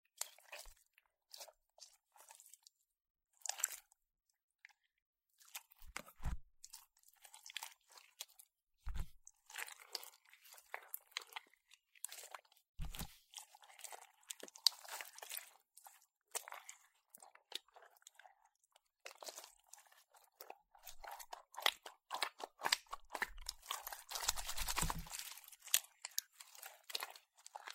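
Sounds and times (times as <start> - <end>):
slime being squished and pressed, crackling and popping: 0.1 - 2.7, 3.4 - 3.9, 5.4 - 27.7.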